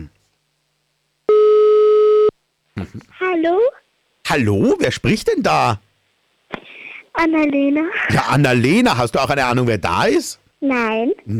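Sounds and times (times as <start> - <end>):
telephone line tone after dialing a number: 1.3 - 2.3
speech: 2.9 - 5.9, 7.2 - 11.3.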